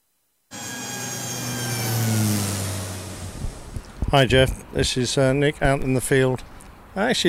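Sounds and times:
car engine starting and revving in an airport car park: 0.5 - 4.7
speech: 4.1 - 7.2.

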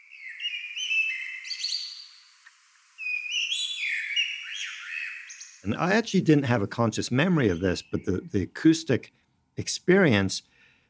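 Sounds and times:
blackbird singing fluty warbling whistles and chirps: 0.0 - 2.4, 3.0 - 8.8
speech: 5.6 - 10.5.

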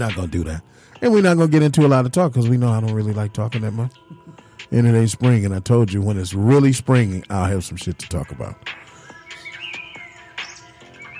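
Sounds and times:
speech: 0.0 - 8.8
birds chirping outdoors: 8.9 - 11.1.

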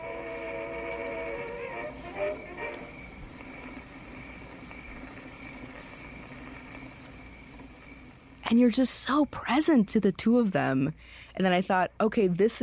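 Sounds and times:
crickets chirping: 0.0 - 10.0
speech: 2.2 - 2.6, 8.5 - 12.6.

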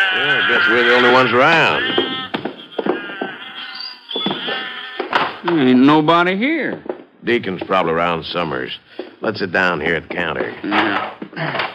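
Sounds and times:
several sheep bleating: 0.0 - 5.4
speech: 0.2 - 2.1, 5.5 - 11.7.

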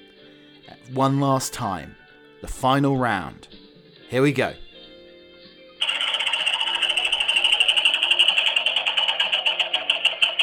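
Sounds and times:
speech: 0.7 - 4.6
spun game-show prize wheel clicking: 5.8 - 10.4.

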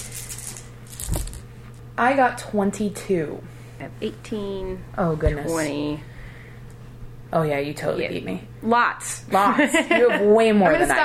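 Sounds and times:
handful of dice rattling and clattering onto a table: 0.0 - 1.4
low hum: 0.0 - 11.0
speech: 2.0 - 6.1, 7.3 - 11.0
laughter: 9.3 - 11.0.

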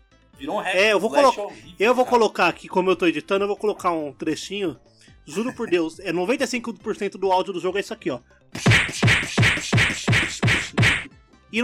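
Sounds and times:
speech: 0.4 - 11.6
video game punch hit sound effects with whooshing tail: 8.6 - 11.1.

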